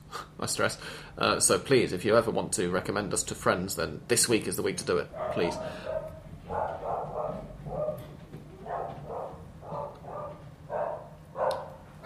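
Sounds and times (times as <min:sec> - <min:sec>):
low hum: 0:00.0 - 0:12.0
speech: 0:00.4 - 0:06.1
neighbour's dogs barking: 0:05.1 - 0:12.0.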